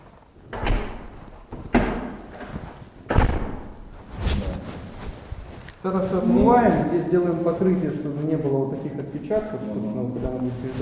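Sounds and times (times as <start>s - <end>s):
heavy insulated apartment door shutting with a thud and rattle: 0.5s - 1.1s, 3.1s - 3.8s
speech: 5.8s - 10.7s.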